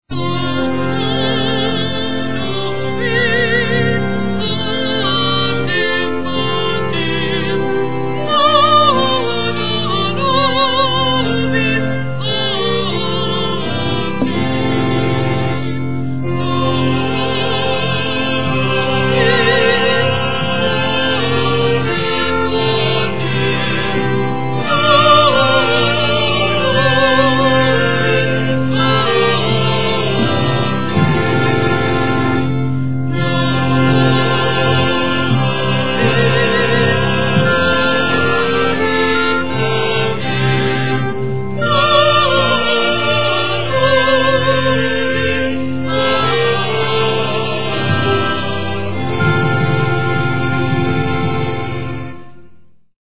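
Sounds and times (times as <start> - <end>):
quartet of solo singers singing: 0.4 - 52.0.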